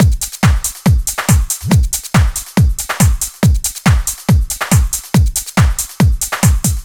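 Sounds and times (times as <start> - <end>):
house beat drums: 0.0 - 6.8.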